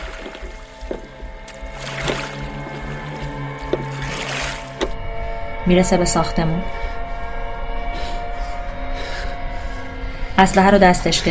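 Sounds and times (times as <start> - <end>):
sharp knocks against a boat hull: 0.0 - 2.9, 3.6 - 5.0
water splashing and washing against a moving boat: 0.0 - 5.0
low continuous boat engine hum: 0.0 - 11.3
speech: 5.7 - 6.9, 10.4 - 11.3.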